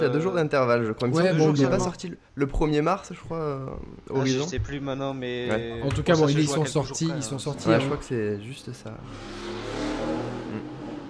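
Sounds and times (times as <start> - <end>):
speech: 0.0 - 9.7
car engine revving outdoors: 9.0 - 11.0.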